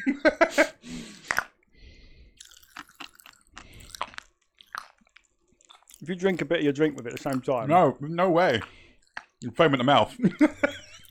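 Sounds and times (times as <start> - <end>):
speech: 0.0 - 0.7, 6.1 - 8.8, 9.4 - 10.7
laughter: 0.0 - 0.8, 9.7 - 11.0
crunchy chews of popping candy: 1.0 - 11.0
popping candy crackling and fizzing in the mouth: 2.4 - 11.0.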